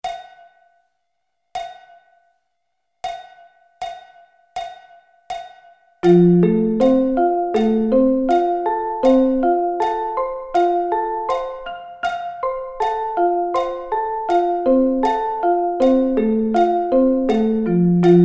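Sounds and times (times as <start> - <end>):
F arpeggio inversions: 6.0 - 18.2.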